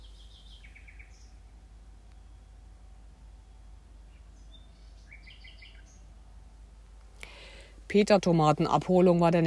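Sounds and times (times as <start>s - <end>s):
nightingale singing at night: 0.0s - 6.2s
low hum: 0.0s - 9.4s
speech: 7.9s - 9.4s.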